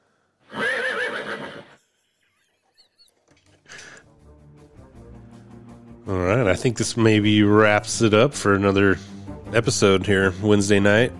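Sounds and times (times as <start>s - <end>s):
horse neighing: 0.5s - 1.8s
speech: 6.1s - 11.1s.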